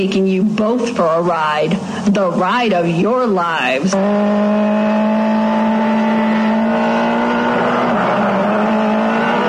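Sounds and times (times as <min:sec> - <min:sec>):
speech: 0:00.0 - 0:05.4
car engine accelerating: 0:03.9 - 0:09.4.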